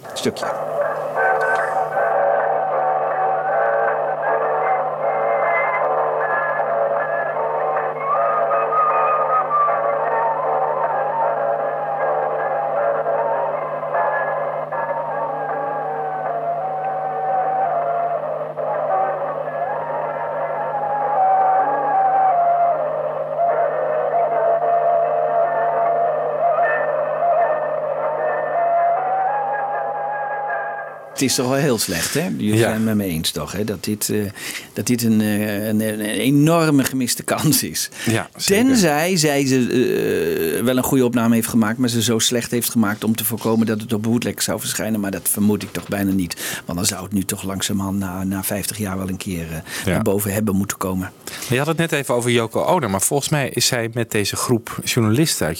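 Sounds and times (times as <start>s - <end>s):
recorder melody on low-fidelity tape: 0.0s - 31.2s
tape hiss: 0.0s - 55.5s
speech: 0.2s - 0.8s, 31.2s - 55.5s.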